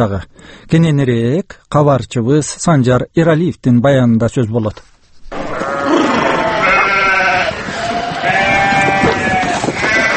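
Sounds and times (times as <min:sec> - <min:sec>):
speech: 0:00.0 - 0:04.9
sheep bleating while being driven by shepherds to summer mountain pasture: 0:05.3 - 0:10.1.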